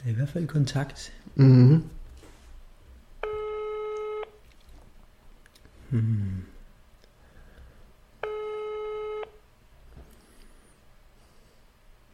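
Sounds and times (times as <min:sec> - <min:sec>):
speech: 0:00.0 - 0:01.9
telephone ringback tone after dialing: 0:03.2 - 0:04.4, 0:08.2 - 0:09.4.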